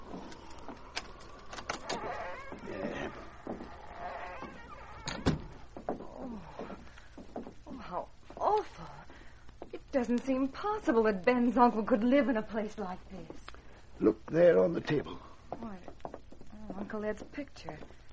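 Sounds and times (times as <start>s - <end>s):
door creaking open: 0.0s - 6.7s
metallic lock clicking and rattling: 0.9s - 2.1s
speech: 10.0s - 13.3s, 14.0s - 15.2s, 16.9s - 18.0s.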